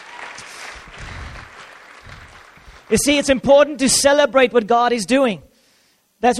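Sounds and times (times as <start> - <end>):
audience applauding: 0.0 - 3.3
low rumble of the room: 0.8 - 2.9
speech: 2.9 - 5.5, 6.2 - 6.3.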